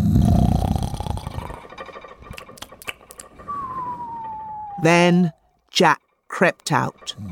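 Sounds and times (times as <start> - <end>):
loud rumbling snoring: 0.0 - 1.6, 7.2 - 7.3
speech: 4.8 - 7.3.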